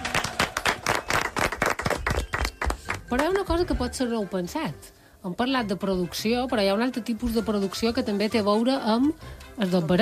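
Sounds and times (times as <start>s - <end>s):
loud applause: 0.0s - 2.7s
speech: 3.1s - 10.0s.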